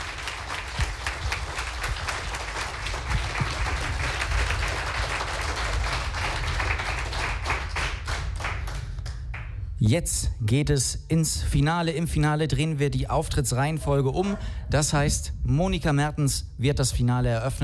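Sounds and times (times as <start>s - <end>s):
audience applause at a contest show: 0.0s - 9.5s
speech: 9.8s - 17.6s.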